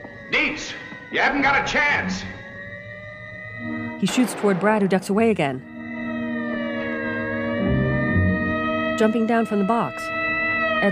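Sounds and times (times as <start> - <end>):
police car siren: 0.0 - 10.9
speech: 0.3 - 2.4, 4.0 - 5.7, 9.0 - 10.2.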